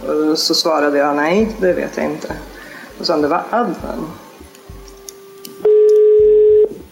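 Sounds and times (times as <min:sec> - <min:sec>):
speech: 0:00.1 - 0:04.2
telephone busy-tone beep after hanging up: 0:05.6 - 0:06.7.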